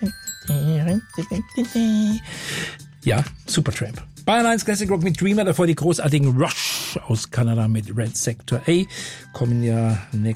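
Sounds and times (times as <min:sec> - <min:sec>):
glockenspiel notes: 0:00.0 - 0:03.7
speech: 0:00.0 - 0:10.3.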